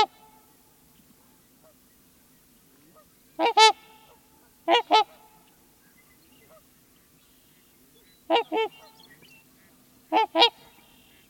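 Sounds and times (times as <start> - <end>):
trumpeter swan giving resonant bugle-like honks: 2.9 - 5.6, 6.4 - 6.8, 8.2 - 11.2.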